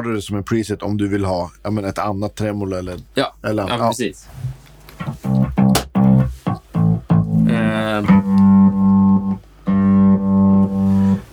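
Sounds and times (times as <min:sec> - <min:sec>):
speech: 0:00.0 - 0:05.5, 0:08.0 - 0:08.2
sustained buzzy electric guitar tone with hard noise gate: 0:05.0 - 0:11.3.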